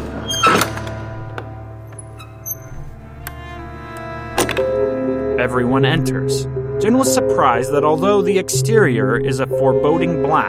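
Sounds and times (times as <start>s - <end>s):
heavy door opening with a thunk: 0.0s - 3.2s, 4.2s - 4.7s
speech: 5.4s - 10.4s.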